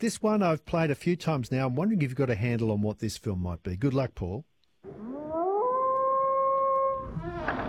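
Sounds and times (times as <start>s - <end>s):
speech: 0.0s - 4.5s
single wolf howling: 4.8s - 7.6s.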